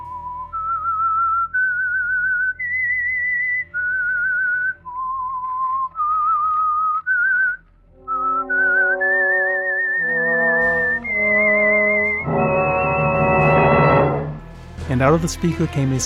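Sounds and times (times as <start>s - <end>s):
lone whistler whistling an eerie off-key tune: 0.0s - 14.4s
swelling orchestral music: 7.9s - 16.0s
speech: 15.0s - 16.0s.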